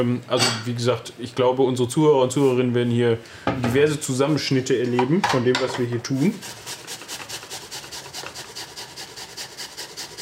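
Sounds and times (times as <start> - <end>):
speech: 0.0 - 6.8
food rubbed against a kitchen grater: 6.2 - 10.2.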